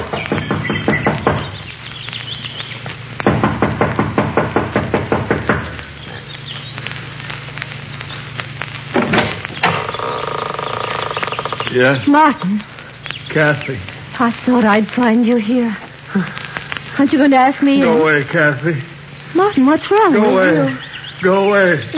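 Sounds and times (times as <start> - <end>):
impatient knocking on a wooden front door: 0.0 - 1.6, 3.3 - 5.7
low steady hum: 0.0 - 21.9
speech: 11.8 - 12.7, 13.3 - 21.9.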